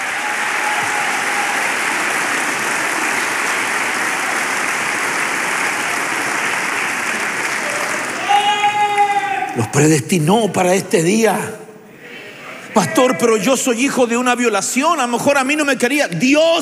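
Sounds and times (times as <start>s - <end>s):
audience clapping hands: 0.0s - 9.7s
speech: 9.7s - 11.6s, 13.0s - 16.6s.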